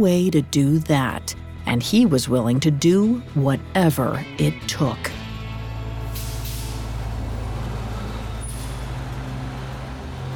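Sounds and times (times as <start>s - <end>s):
speech: 0.0s - 5.2s
bus engine idling as it pulls up: 5.4s - 10.3s
bus air brakes hissing: 6.1s - 7.0s, 7.9s - 9.1s.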